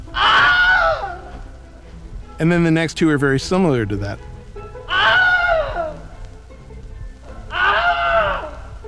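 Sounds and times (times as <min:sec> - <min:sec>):
faint noise: 0:00.0 - 0:08.8
stock film scream: 0:00.1 - 0:01.2, 0:04.9 - 0:06.0, 0:07.5 - 0:08.6
speech: 0:02.4 - 0:04.3.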